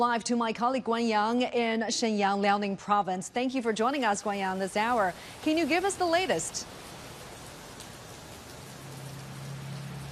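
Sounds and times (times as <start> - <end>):
speech: 0.0 - 6.8
heavy rain pouring: 3.8 - 10.1.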